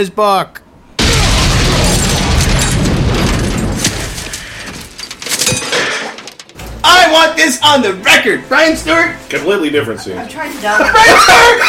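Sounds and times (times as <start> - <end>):
speech: 0.0 - 0.6, 7.1 - 11.6
loud heavy crash of a car crashing to the ground: 0.9 - 7.2
crunching debris: 1.0 - 7.2
scattered metallic clanks: 1.8 - 6.9
laughter: 10.0 - 11.6.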